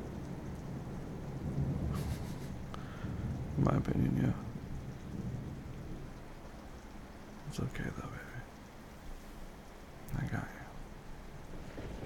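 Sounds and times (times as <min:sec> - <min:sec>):
low thunder rumbling: 0:00.0 - 0:06.5, 0:11.3 - 0:12.0
steady rain: 0:00.0 - 0:12.0
speech: 0:03.6 - 0:04.5, 0:07.6 - 0:08.3.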